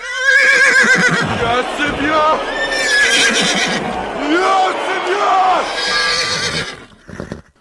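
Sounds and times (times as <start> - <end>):
horse neighing: 0.0 - 1.5, 2.6 - 3.9, 5.7 - 7.5
laughter: 0.7 - 6.4
speech: 1.4 - 6.7.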